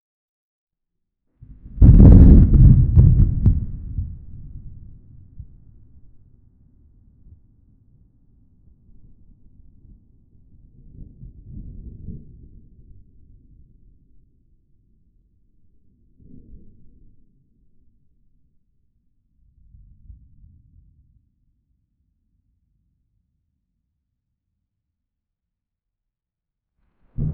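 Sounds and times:
thunder in an open field: 1.5 - 5.6, 27.2 - 27.3.

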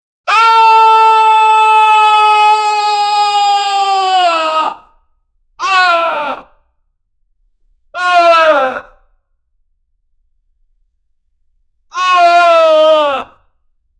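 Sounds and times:
person screaming at a workplace: 0.3 - 4.8, 5.6 - 6.5, 12.0 - 13.3.

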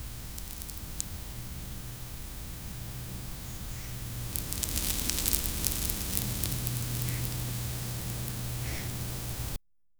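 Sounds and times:
soft pop of fine sand sprinkling: 0.0 - 9.6.

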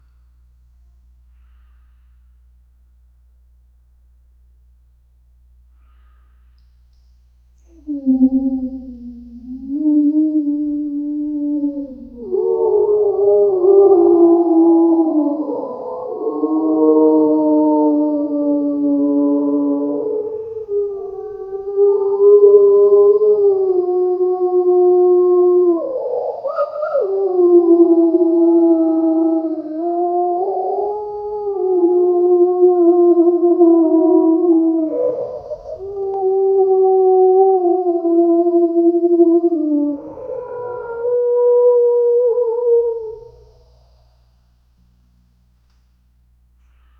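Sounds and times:
surreal ethereal deer-like sound: 7.6 - 44.2.

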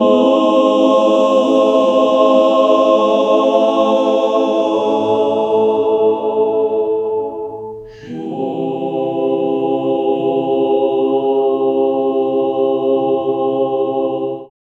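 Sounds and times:
male vocal choir: 0.0 - 14.5.

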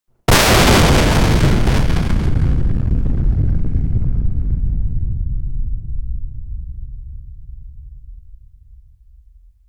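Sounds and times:
2D fireball throw: 0.3 - 7.4
fireball explosion: 0.3 - 7.9.

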